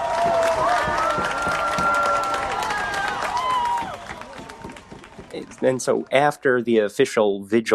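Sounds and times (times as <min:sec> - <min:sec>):
whoops and whistle-like cries: 0:00.0 - 0:04.6
large crowd cheering and clapping: 0:00.0 - 0:06.4
speech: 0:05.6 - 0:07.7.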